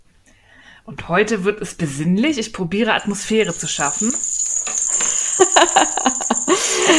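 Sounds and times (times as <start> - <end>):
speech: 0.8 - 4.3, 5.0 - 6.9
small bells jingling: 3.0 - 6.9.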